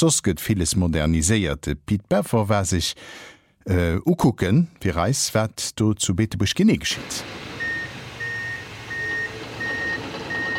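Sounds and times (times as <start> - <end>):
speech: 0.0 - 7.5
heavy engine rumbling at a construction site at Bettembourg station: 7.0 - 10.5
vehicle reversing alarm beeping at a construction site: 7.5 - 10.5.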